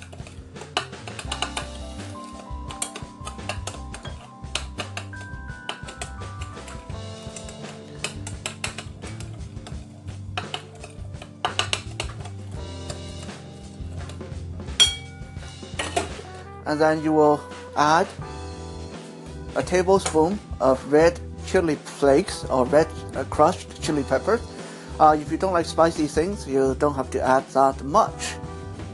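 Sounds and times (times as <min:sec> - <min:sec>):
spoon stirring a thick brown-sugar mixture in a pot: 0:00.0 - 0:14.3
speech: 0:16.7 - 0:18.3, 0:19.6 - 0:28.4.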